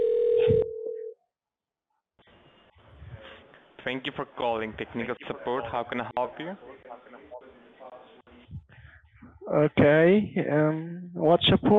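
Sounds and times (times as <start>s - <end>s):
telephone ringback tone over the line: 0.0s - 1.1s
speech: 3.8s - 6.8s, 9.5s - 11.7s.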